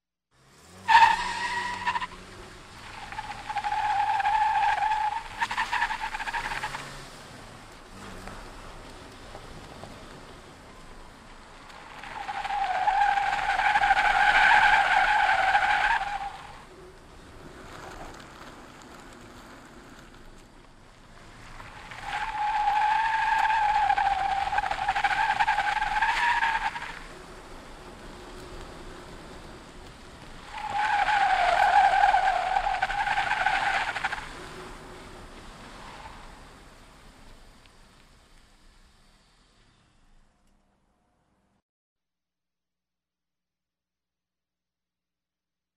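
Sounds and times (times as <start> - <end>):
car tires screeching: 0.4 - 40.2
car maneuvering: 0.4 - 40.3.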